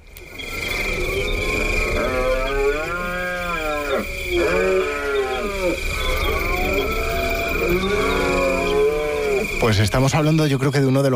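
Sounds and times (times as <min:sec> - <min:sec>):
red deer stag bellowing during the rut: 0:00.7 - 0:09.8
speech: 0:09.6 - 0:11.1.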